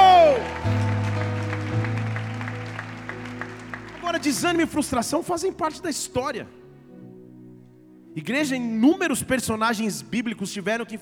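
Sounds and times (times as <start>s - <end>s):
audience applauding: 0.0s - 5.5s
sustained keyboard chords: 0.0s - 9.4s
speech: 4.2s - 6.6s, 8.2s - 11.0s.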